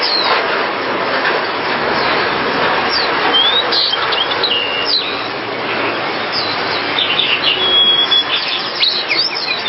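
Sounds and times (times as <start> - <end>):
Java sparrow twittering song: 0.0 - 0.4, 2.9 - 9.6
loud steady noisy background: 0.0 - 9.6.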